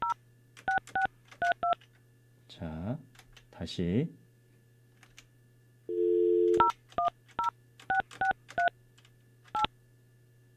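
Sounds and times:
telephone keypad dialing beeps: 0:00.0 - 0:01.8, 0:05.9 - 0:08.7
speech: 0:02.6 - 0:04.2
steady telephone dial tone: 0:05.9 - 0:06.7.

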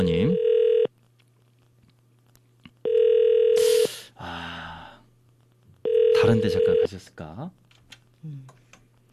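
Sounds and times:
outgoing phone call electronic ringback tone: 0:00.3 - 0:00.9, 0:02.8 - 0:03.8, 0:05.8 - 0:06.9
speech: 0:06.3 - 0:07.6, 0:08.2 - 0:08.6.

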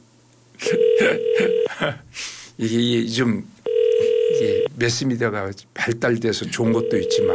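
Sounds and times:
speech: 0:00.6 - 0:03.6, 0:04.4 - 0:07.3
mobile phone call dialing tone: 0:00.7 - 0:01.7, 0:03.7 - 0:04.7, 0:06.8 - 0:07.3.

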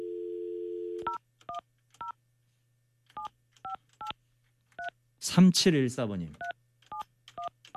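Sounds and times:
steady telephone dial tone: 0:00.0 - 0:01.2
faint hum: 0:00.0 - 0:07.7
speech: 0:05.3 - 0:06.5.

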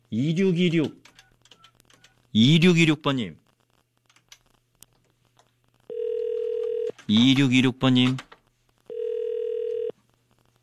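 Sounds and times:
speech: 0:00.1 - 0:01.0, 0:02.3 - 0:03.4, 0:07.1 - 0:08.3
electronic telephone ringback tone: 0:05.9 - 0:06.9, 0:08.9 - 0:09.9.

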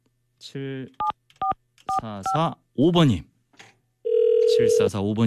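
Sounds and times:
speech: 0:00.5 - 0:01.2, 0:02.0 - 0:03.3, 0:04.6 - 0:05.2
telephone dial tone: 0:04.1 - 0:04.8.

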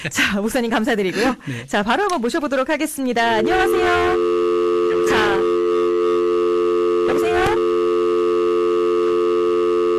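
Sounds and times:
speech: 0:00.0 - 0:04.3
telephone busy tone after dropped call: 0:03.4 - 0:09.9.

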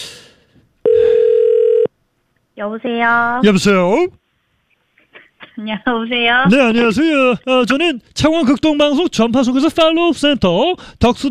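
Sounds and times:
outgoing phone call ringback tone: 0:00.8 - 0:01.9
speech: 0:02.6 - 0:04.2, 0:05.6 - 0:11.2.

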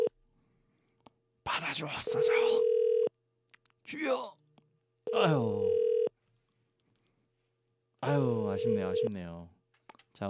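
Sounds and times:
speech: 0:01.7 - 0:02.8, 0:03.9 - 0:04.4, 0:05.1 - 0:05.8, 0:08.0 - 0:09.5
electronic telephone ring tone of an unanswered call: 0:02.1 - 0:03.1, 0:05.1 - 0:06.1, 0:08.4 - 0:09.2.

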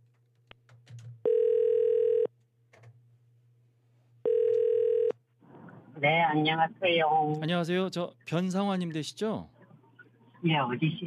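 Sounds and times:
telephone ringback tone as a radio programme calls a listener: 0:01.2 - 0:02.3, 0:04.2 - 0:05.1
speech: 0:06.0 - 0:09.6, 0:10.4 - 0:11.0.

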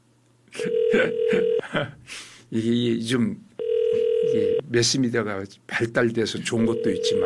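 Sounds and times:
phone ringback tone on an unanswered call: 0:00.6 - 0:01.6, 0:03.6 - 0:04.6, 0:06.6 - 0:07.2
speech: 0:00.9 - 0:03.6, 0:04.3 - 0:07.2.

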